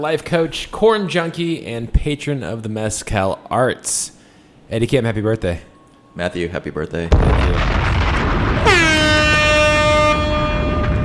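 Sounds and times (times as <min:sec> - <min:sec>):
speech: 0:00.0 - 0:07.8
steady noise: 0:00.0 - 0:11.0
air horn blaring: 0:08.6 - 0:11.0.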